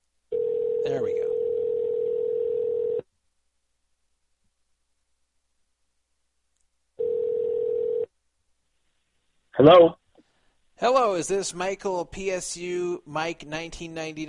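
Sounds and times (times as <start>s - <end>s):
telephone ringback tone heard over the line: 0.3s - 3.0s, 7.0s - 8.1s
speech: 0.8s - 1.4s, 9.6s - 10.0s, 10.8s - 14.2s.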